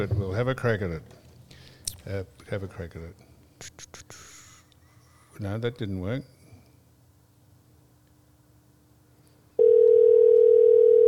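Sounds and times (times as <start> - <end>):
speech: 0.0 - 1.2, 2.0 - 4.2, 5.4 - 6.4
overseas telephone ringing tone: 9.6 - 11.0.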